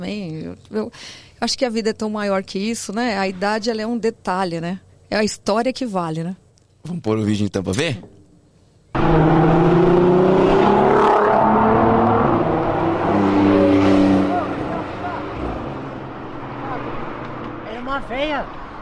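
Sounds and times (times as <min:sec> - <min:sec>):
speech: 0:00.0 - 0:08.2
Porsche Turbo engine driving and accelerating: 0:09.0 - 0:17.8.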